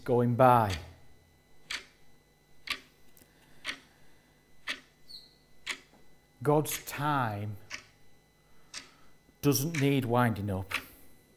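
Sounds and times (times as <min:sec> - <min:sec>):
speech: 0:00.0 - 0:00.9, 0:06.4 - 0:07.6, 0:09.4 - 0:10.8
faint hum: 0:00.0 - 0:11.3
clock ticking: 0:00.6 - 0:00.9, 0:01.6 - 0:02.0, 0:02.6 - 0:02.9, 0:03.6 - 0:03.9, 0:04.6 - 0:04.9, 0:05.6 - 0:05.9, 0:07.6 - 0:08.0, 0:08.7 - 0:10.9.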